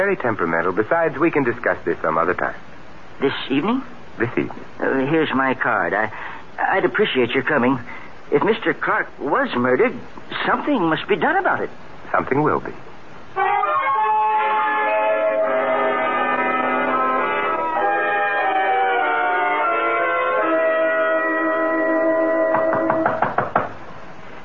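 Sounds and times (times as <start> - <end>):
speech: 0.0 - 13.5
sustained organ-like music: 13.4 - 23.4
sharp loud knocks on a door: 22.5 - 23.8.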